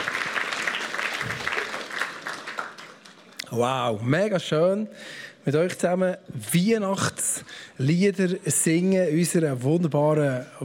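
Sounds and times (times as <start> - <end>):
crowd applauding: 0.0 - 3.4
speech: 3.5 - 10.6.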